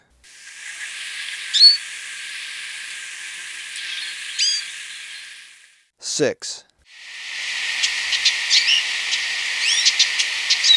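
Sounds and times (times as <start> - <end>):
constant hissing noise: 0.0 - 5.8, 6.8 - 10.7
speech: 6.2 - 6.7
hooded siskin high sliding call notes in Ecuador: 6.9 - 10.7.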